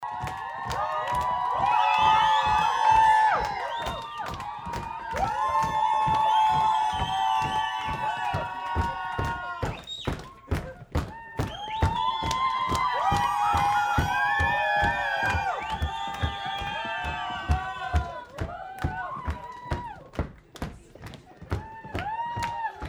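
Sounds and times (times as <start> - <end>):
club crowd cheering and dancing: 0.0 - 22.8.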